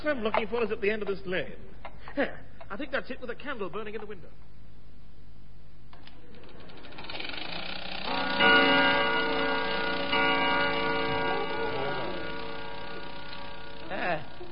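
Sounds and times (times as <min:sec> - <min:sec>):
speech: 0:00.0 - 0:04.5
grandfather clock striking: 0:06.8 - 0:14.5.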